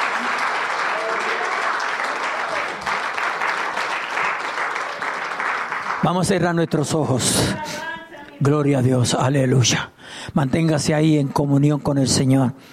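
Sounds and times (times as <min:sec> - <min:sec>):
audience applauding: 0:00.0 - 0:07.0
speech: 0:06.0 - 0:12.7.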